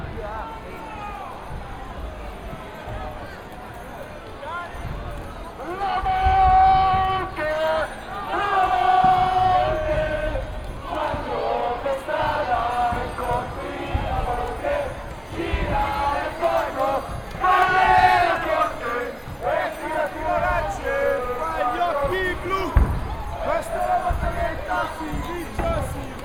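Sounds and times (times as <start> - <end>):
choir singing: 6.0 - 25.8.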